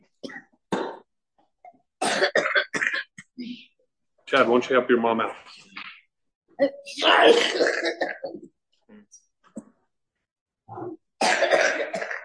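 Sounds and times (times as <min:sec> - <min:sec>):
harsh coughing fit: 0:02.0 - 0:03.2, 0:07.2 - 0:08.4, 0:11.2 - 0:12.2
speech: 0:04.3 - 0:05.6, 0:06.6 - 0:08.4.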